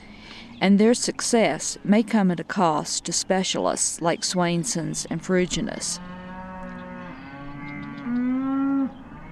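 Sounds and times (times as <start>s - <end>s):
speech: 0.6s - 6.2s
cow mooing: 6.0s - 9.3s.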